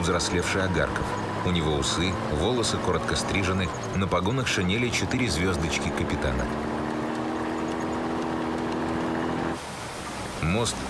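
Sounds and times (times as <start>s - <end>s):
speech: 0.0s - 6.8s, 10.4s - 10.8s
off-road military jeep engine droning while driving fast through a forest: 0.0s - 10.8s
road rumble from a jeep driving fast: 0.0s - 10.8s.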